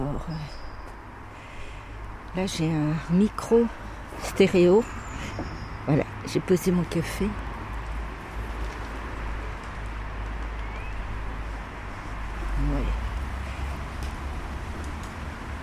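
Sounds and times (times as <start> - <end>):
low rumble of car traffic: 0.0 - 15.6
speech: 0.2 - 0.6, 2.3 - 7.4
vehicle passing: 3.5 - 15.6.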